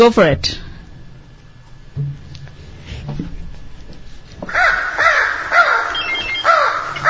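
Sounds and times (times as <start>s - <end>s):
speech: 0.0s - 0.6s
crow cawing: 4.4s - 7.0s.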